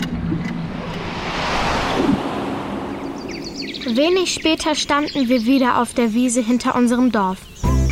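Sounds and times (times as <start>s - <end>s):
rushing air current whoosh: 0.2s - 5.3s
speech: 3.8s - 7.5s.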